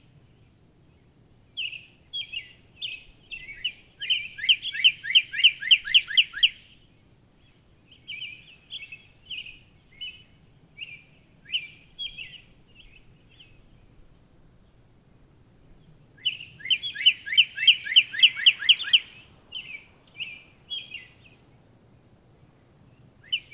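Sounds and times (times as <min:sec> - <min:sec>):
Northern cardinal singing slurred whistled phrases: 0:03.4 - 0:06.6, 0:16.3 - 0:21.3.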